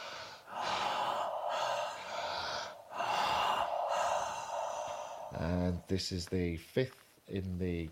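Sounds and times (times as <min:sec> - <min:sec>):
deep reset breaths in a guided breathing exercise: 0:00.0 - 0:06.0
speech: 0:05.4 - 0:07.9.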